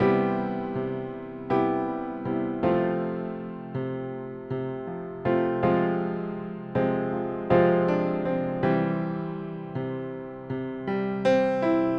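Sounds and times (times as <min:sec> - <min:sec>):
70s ballad piano: 0:00.0 - 0:11.9.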